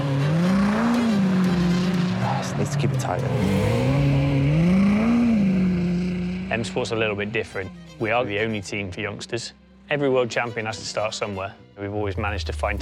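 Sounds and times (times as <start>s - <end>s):
rally car engine revving: 0.0s - 8.0s, 12.1s - 12.8s
speech: 2.6s - 3.9s, 6.5s - 12.8s.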